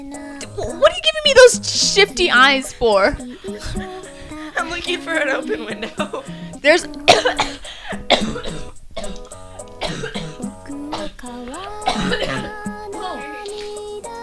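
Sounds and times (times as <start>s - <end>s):
speech: 0.0s - 3.9s, 4.6s - 7.6s
laughter: 2.4s - 6.4s
person coughing in harsh bursts: 7.1s - 11.2s, 11.8s - 12.6s
throat clearing: 7.1s - 11.2s, 11.9s - 12.6s.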